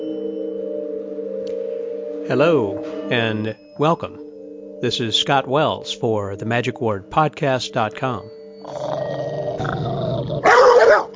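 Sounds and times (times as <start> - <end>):
speech: 2.3 - 4.2, 4.8 - 9.0
dog growling low: 8.6 - 11.1
dog barking harshly: 10.4 - 11.1.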